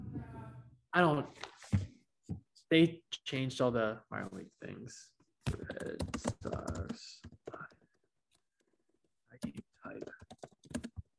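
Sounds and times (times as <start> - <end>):
speech: 1.0 - 1.8, 2.7 - 7.3
rapid typing on a computer keyboard: 5.5 - 7.7, 9.4 - 11.1.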